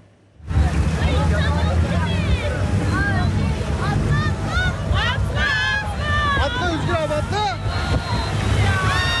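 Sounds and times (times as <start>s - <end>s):
tour boat engine rumbling while sinking: 0.0s - 9.1s
churning water around a sinking tour boat: 0.3s - 9.1s
many people shouting and crying in panic: 4.1s - 9.1s.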